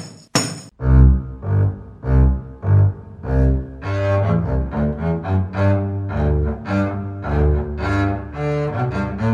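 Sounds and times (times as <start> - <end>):
instruments playing: 0.4 - 9.3.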